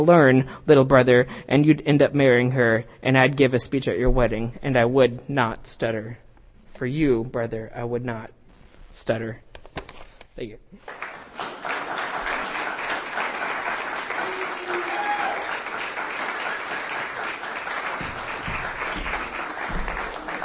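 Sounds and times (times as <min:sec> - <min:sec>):
speech: 0:00.0 - 0:06.2, 0:06.8 - 0:11.1
audience applause at a live reading event: 0:10.8 - 0:20.4.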